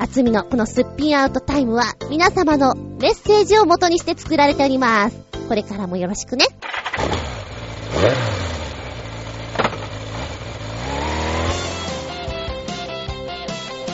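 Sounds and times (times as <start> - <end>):
speech: 0.0 - 7.2
motorcycle engine cranking, starting and revving: 6.6 - 13.1.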